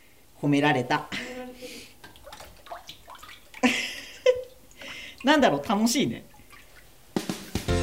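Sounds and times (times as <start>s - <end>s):
speech: 0.4s - 1.4s, 5.2s - 6.3s
water sloshing in a shallow vat as a washi papermaking screen is dipped and rocked: 2.0s - 7.7s.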